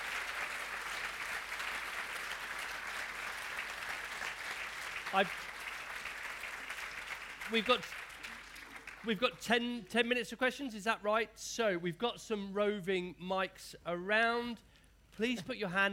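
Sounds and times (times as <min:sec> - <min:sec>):
audience applause: 0:00.0 - 0:09.1
speech: 0:05.1 - 0:05.5, 0:07.5 - 0:08.0, 0:09.0 - 0:15.9.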